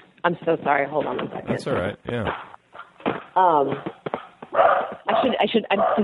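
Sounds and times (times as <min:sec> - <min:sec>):
speech: 0:00.2 - 0:02.5, 0:03.4 - 0:06.0
dog barking and yelping over a phone line: 0:04.6 - 0:05.0.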